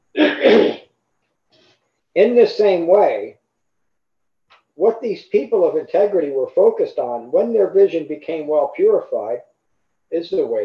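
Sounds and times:
person clearing throat in two rasping pushes: 0.1s - 0.9s
speech: 2.2s - 3.4s, 4.8s - 9.5s, 10.1s - 10.6s.

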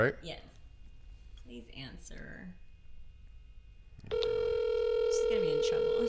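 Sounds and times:
speech: 0.0s - 0.5s, 1.5s - 2.6s, 5.3s - 6.0s
phone outgoing ringback tone: 4.1s - 6.0s.

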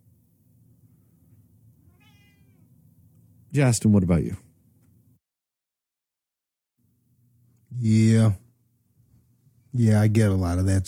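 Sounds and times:
cat meowing: 1.8s - 2.6s
speech: 3.6s - 4.4s, 9.8s - 10.8s.

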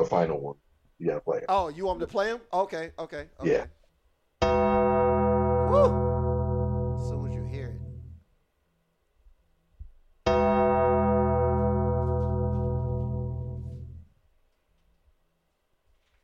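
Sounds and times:
speech: 0.0s - 3.8s, 4.4s - 6.0s
deep gong struck: 4.4s - 8.2s, 10.3s - 14.0s.

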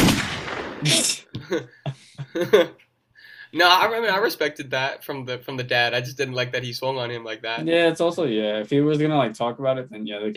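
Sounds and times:
gunshot sound effect: 0.0s - 1.3s
laughter: 0.8s - 2.8s
speech: 0.8s - 2.8s, 3.5s - 10.3s.

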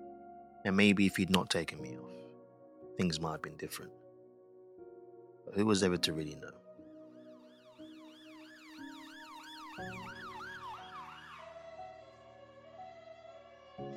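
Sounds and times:
speech: 0.6s - 2.1s, 3.0s - 4.0s, 5.5s - 6.6s, 9.8s - 10.1s
ambulance siren yelping: 7.2s - 13.9s.

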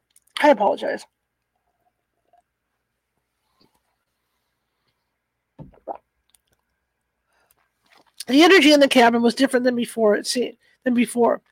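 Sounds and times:
speech: 0.4s - 1.2s, 8.3s - 11.5s
person gulping water: 5.6s - 6.8s.

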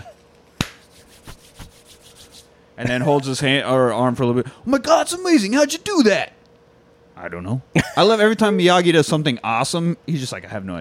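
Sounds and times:
sharp hand clap: 0.6s - 1.7s
palms rubbing together with soft brushing and quiet slaps: 0.6s - 2.6s
speech: 2.8s - 6.4s, 7.2s - 10.7s.

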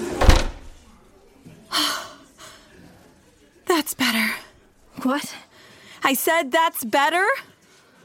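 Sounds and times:
heavy door thud as it swings: 0.2s - 0.8s
speech: 3.8s - 4.4s, 5.0s - 5.5s, 6.0s - 7.5s.

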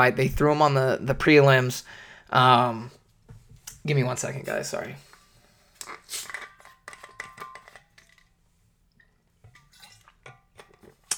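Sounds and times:
speech: 0.0s - 3.0s, 3.8s - 5.1s
sipping a fizzy sparkling water: 5.8s - 6.4s.

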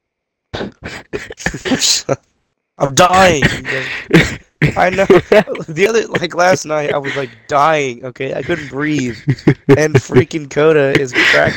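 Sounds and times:
person coughing in rough hacking bursts: 0.6s - 2.2s, 3.2s - 7.5s, 10.9s - 11.5s
speech: 0.6s - 11.5s
laughter: 0.9s - 2.2s, 3.0s - 11.5s.

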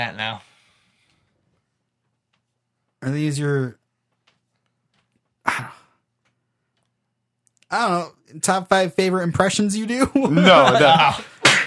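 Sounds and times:
speech: 0.0s - 0.5s, 3.0s - 3.8s, 5.6s - 5.8s, 7.7s - 11.4s
person sneezing: 5.5s - 6.0s
laughter: 10.0s - 11.5s.

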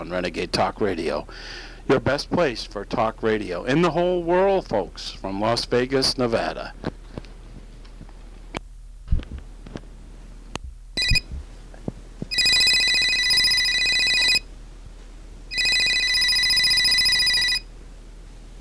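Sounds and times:
speech: 0.0s - 6.9s
cell phone ringing: 11.0s - 11.2s, 12.3s - 14.4s, 15.5s - 17.7s.

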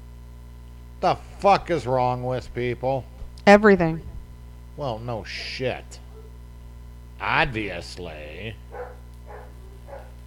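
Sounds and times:
constant low electrical hum: 0.0s - 10.2s
speech: 1.0s - 4.1s, 4.8s - 6.0s, 7.2s - 8.7s
dogs barking: 5.2s - 6.4s, 8.6s - 10.2s.

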